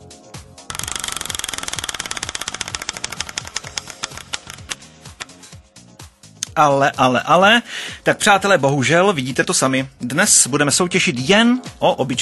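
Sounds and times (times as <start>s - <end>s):
prize wheel spinning with ratcheting clicks: 0.7s - 5.3s
speech: 6.6s - 12.2s.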